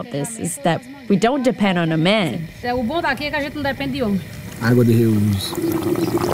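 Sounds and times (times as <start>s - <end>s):
speech: 0.0s - 6.3s
electric pump humming while pushing gray water through hoses: 2.1s - 6.3s
gray water pouring and flowing through hoses: 3.2s - 6.3s.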